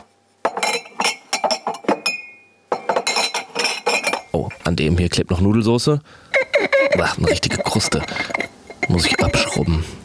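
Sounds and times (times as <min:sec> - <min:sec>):
glasses clinking while loaded into a dishwasher: 0:00.4 - 0:04.6, 0:06.4 - 0:09.8
speech: 0:04.7 - 0:06.3, 0:07.0 - 0:10.0.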